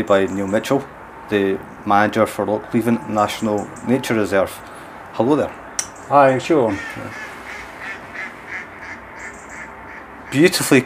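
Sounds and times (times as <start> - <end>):
speech: 0.0 - 7.2, 10.3 - 10.8
mallard duck quacking at Lochleven National Nature Reserve: 6.6 - 10.5.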